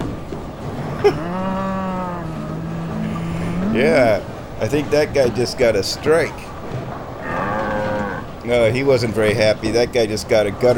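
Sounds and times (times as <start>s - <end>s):
low constant hum: 0.0s - 10.7s
speech: 1.0s - 1.6s, 3.8s - 6.5s, 8.4s - 10.7s
cow mooing: 1.0s - 4.4s, 7.2s - 8.4s.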